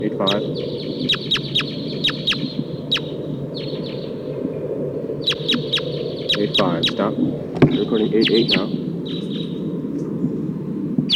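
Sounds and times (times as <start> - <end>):
speech: 0.0 - 1.2, 6.4 - 8.8
wild red crossbills of the Sitkensis type giving chip calls: 0.0 - 4.0, 5.2 - 9.6
steady low rumble: 0.0 - 11.1.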